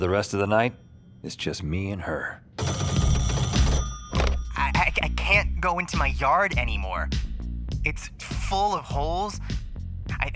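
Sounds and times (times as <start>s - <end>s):
speech: 0.0s - 2.7s, 5.3s - 7.2s, 7.8s - 9.6s
telephone bell ringing: 2.6s - 4.8s.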